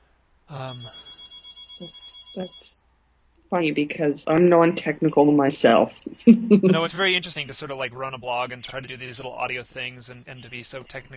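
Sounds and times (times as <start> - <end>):
laughter: 0.5 - 0.9, 6.1 - 11.1
speech: 0.5 - 1.1, 1.8 - 2.8, 3.5 - 11.1
landline telephone ringing: 0.5 - 2.8.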